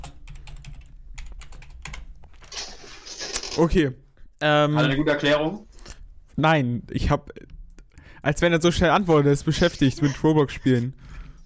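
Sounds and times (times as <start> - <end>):
typing an angry message on a computer keyboard: 0.0 - 2.1
speech: 3.6 - 5.7, 6.4 - 7.5, 8.2 - 11.0.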